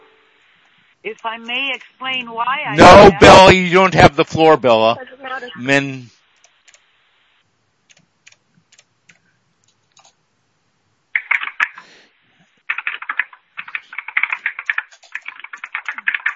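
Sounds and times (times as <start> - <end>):
speech: 1.0 - 6.2
computer keyboard typing by an unmuted meeting participant: 7.9 - 9.2, 11.2 - 11.8, 12.7 - 16.3.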